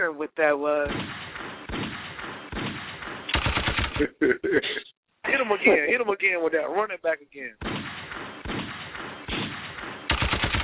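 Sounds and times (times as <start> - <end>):
speech: 0.0 - 1.9, 4.0 - 4.9, 5.5 - 8.2
gunfire sound effect with single shots and rapid bursts: 0.8 - 4.2, 7.6 - 10.6
laughter: 3.9 - 6.0.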